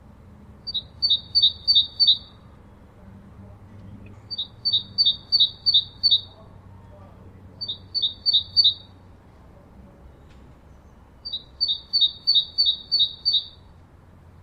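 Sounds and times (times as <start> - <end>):
great tit Parus major singing two-note teacher phrases: 0.7 - 2.4, 4.3 - 6.4, 7.6 - 9.0, 10.7 - 13.7.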